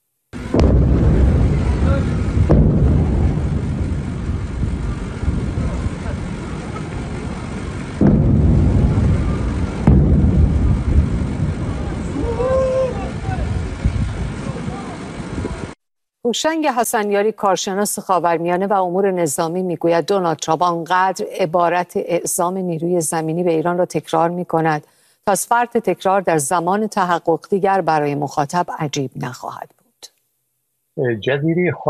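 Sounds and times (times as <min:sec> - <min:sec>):
explosions booming: 0:00.4 - 0:15.8
speech: 0:16.3 - 0:30.1, 0:31.0 - 0:31.8.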